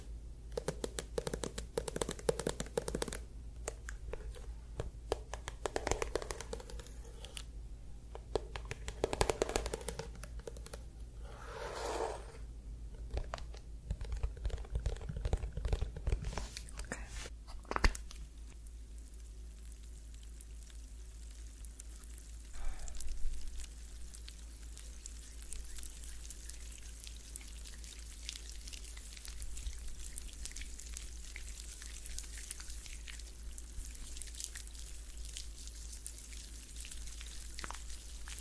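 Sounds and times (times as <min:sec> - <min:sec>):
soft hiss: 0:00.0 - 0:14.8, 0:15.8 - 0:38.4
crackly scratching and rubbing of a scalp massage: 0:05.2 - 0:07.5, 0:08.3 - 0:12.4, 0:13.1 - 0:17.3, 0:23.5 - 0:38.4.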